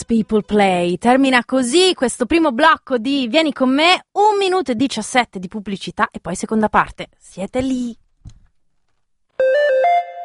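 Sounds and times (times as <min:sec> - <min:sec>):
speech: 0:00.1 - 0:08.4
phone message notification chime: 0:09.4 - 0:10.2.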